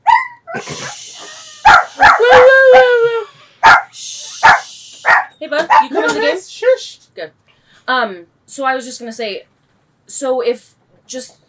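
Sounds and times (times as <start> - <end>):
dog barking: 0.0 - 1.0, 1.6 - 2.5, 3.6 - 6.0
dog whining: 0.0 - 3.8
speech: 0.6 - 1.0, 5.4 - 11.4.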